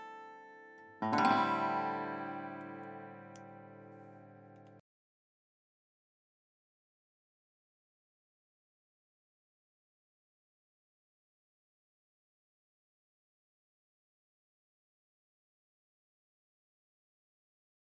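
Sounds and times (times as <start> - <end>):
open strings: 1.0 - 4.8.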